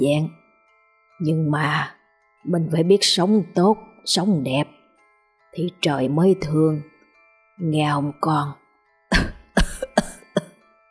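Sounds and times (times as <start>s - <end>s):
speech: 0.0s - 0.4s, 1.2s - 4.8s, 5.5s - 6.9s, 7.6s - 9.3s
old woman coughing harshly: 9.1s - 10.6s.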